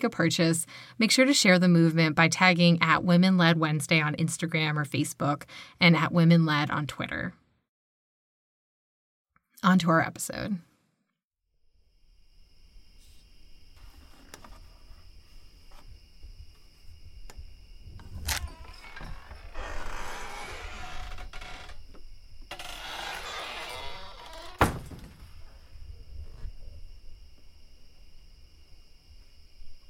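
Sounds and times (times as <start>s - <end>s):
speech: 0.0s - 7.4s, 9.6s - 10.7s
crickets and insects chirring at night by a lake in the Adirondacks: 11.6s - 29.8s.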